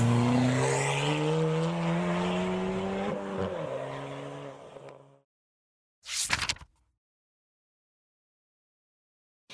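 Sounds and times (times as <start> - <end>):
car engine revving hard and pulling away: 0.0 - 5.2.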